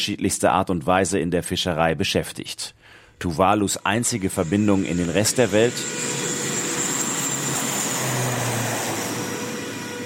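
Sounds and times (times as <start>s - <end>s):
speech: 0.0s - 6.3s
small propeller plane flying between Funafuti atoll in Tuvalu and Fiji: 3.6s - 10.0s.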